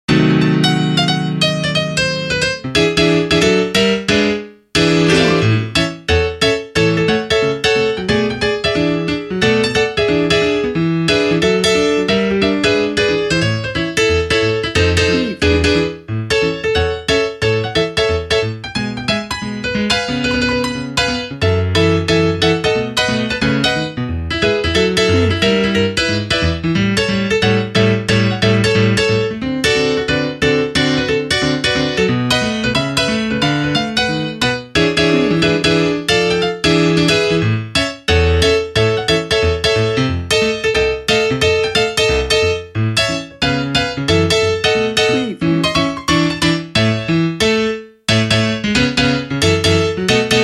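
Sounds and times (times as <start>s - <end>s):
ragtime piano: 0.1s - 50.4s.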